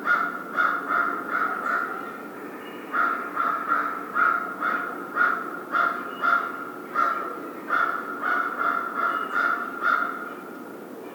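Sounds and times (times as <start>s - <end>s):
American crow calling harsh caws: 0.0s - 1.9s, 3.0s - 10.2s.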